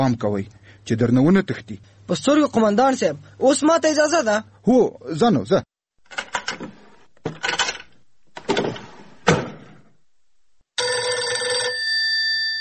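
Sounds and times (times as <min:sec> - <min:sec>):
speech: 0:00.0 - 0:05.7
door-like bangs and clatters: 0:08.4 - 0:09.8
telephone ringing: 0:10.8 - 0:12.5.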